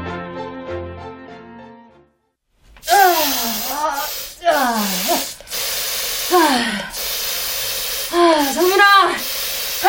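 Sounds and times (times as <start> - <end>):
aerosol insecticide spray used to kill flies: 2.7 - 9.8.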